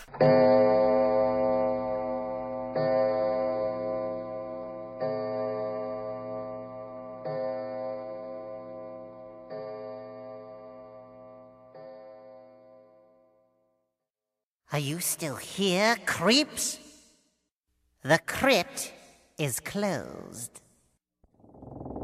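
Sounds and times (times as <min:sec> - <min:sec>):
speech: 0:00.2 - 0:00.6, 0:14.8 - 0:16.8, 0:18.1 - 0:20.6
clock chimes ringing: 0:00.2 - 0:12.9.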